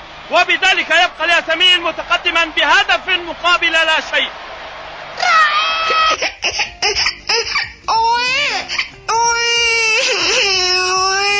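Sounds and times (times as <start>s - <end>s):
speech: 0.3s - 4.5s, 5.2s - 8.8s
little girl crying: 5.5s - 11.3s.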